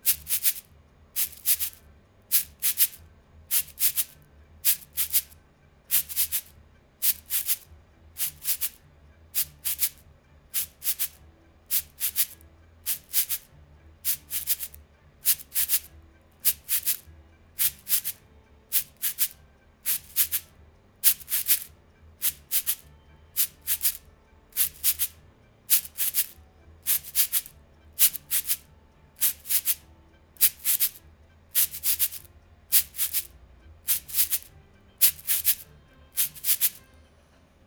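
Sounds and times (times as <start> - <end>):
shaker being twisted: 0.0 - 8.8, 9.4 - 10.0, 10.6 - 28.6, 29.2 - 31.0, 31.6 - 33.3, 33.9 - 36.8.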